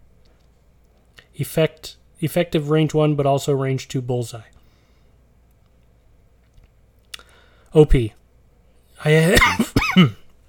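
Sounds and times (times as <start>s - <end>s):
speech: 1.4s - 4.5s, 7.7s - 8.2s, 9.0s - 10.2s
person coughing: 9.1s - 10.3s.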